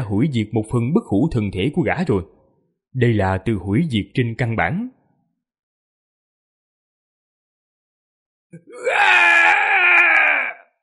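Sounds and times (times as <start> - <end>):
speech: 0.1 - 5.0
human voice howling in pain: 8.6 - 10.7.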